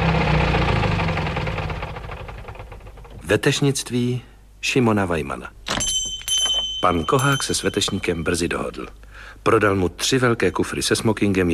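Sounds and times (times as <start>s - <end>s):
car engine running with a faint knock: 0.0s - 3.2s
speech: 3.3s - 5.6s, 6.8s - 11.5s.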